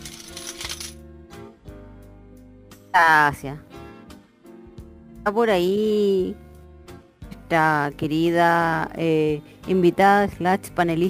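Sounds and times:
coins dropping into a shoebox for collecting contributions: 0.0 - 1.0
speech: 2.9 - 3.7, 5.2 - 6.4, 7.5 - 11.0.

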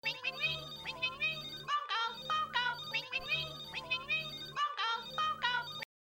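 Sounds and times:
synthetic computer-phone ringtone with warbling electronic melody: 0.0 - 5.9.

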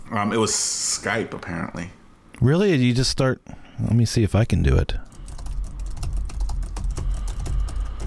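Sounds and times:
speech: 0.1 - 5.1
rapid typing on a computer keyboard: 5.0 - 8.0.

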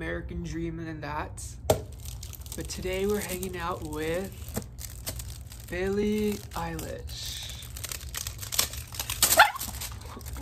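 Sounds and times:
speech: 0.0 - 1.8, 2.6 - 4.7, 5.7 - 7.4
low hum: 0.0 - 10.3
rustling and crinkling: 1.8 - 10.3
dog yelping after being hit by a person: 9.2 - 9.8.

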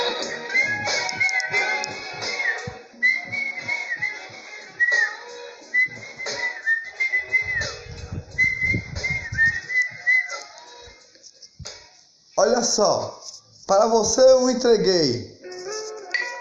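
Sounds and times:
faint noise: 0.0 - 16.3
person whistling a birdlike tune imitating a small bird: 2.3 - 4.2, 4.8 - 10.4
speech: 12.6 - 15.3.

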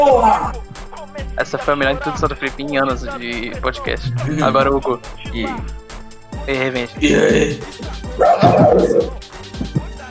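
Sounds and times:
speech: 0.0 - 5.8, 6.4 - 9.4
person barking like a dog: 7.0 - 9.2.

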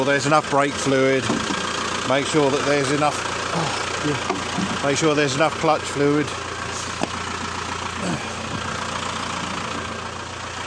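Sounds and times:
speech: 0.0 - 1.5, 2.1 - 6.5
digger engine idling as it warms up after starting: 0.0 - 10.6.

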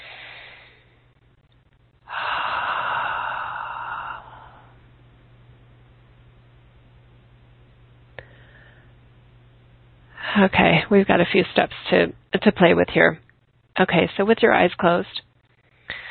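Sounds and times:
deep breathing during a guided meditation: 0.0 - 1.0, 2.0 - 4.9, 8.2 - 9.0, 15.7 - 16.0
low steady hum: 0.0 - 16.0
speech: 10.4 - 13.2, 13.8 - 15.3.

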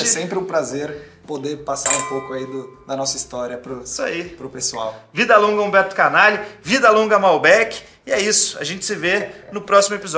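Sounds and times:
speech: 0.1 - 10.1
wine glasses clinking together in a toast: 1.8 - 3.1.

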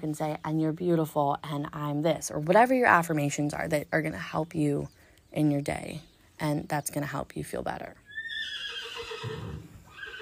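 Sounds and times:
speech: 0.0 - 8.6, 9.2 - 9.7
horse neighing at a ranch: 8.1 - 10.2.

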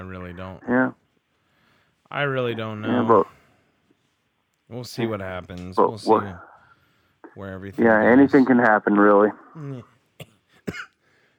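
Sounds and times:
speech: 0.3 - 1.0, 2.1 - 3.4, 4.7 - 6.5, 7.4 - 10.9
sharp coughing: 9.3 - 11.0
rough throat clearing: 9.6 - 11.0.

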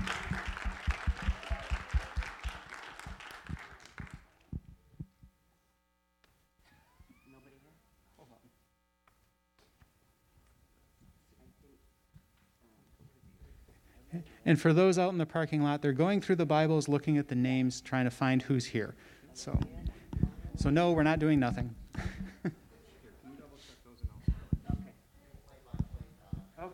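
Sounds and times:
audience round of applause: 0.0 - 4.5
speech: 14.4 - 19.9, 20.6 - 22.6.

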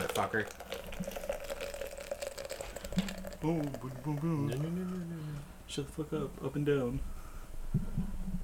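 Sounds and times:
drink pouring into a glass: 0.0 - 5.2
speech: 0.2 - 1.2, 3.0 - 7.8.

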